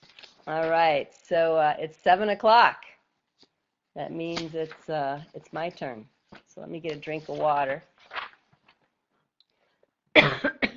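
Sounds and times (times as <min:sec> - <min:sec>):
speech: 0:00.5 - 0:02.9, 0:04.0 - 0:08.2
person coughing: 0:10.1 - 0:10.7.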